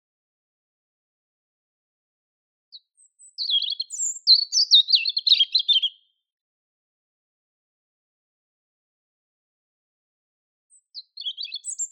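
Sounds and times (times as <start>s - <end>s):
European robin Erithacus rubecula singing: 2.7s - 6.2s, 10.7s - 11.9s.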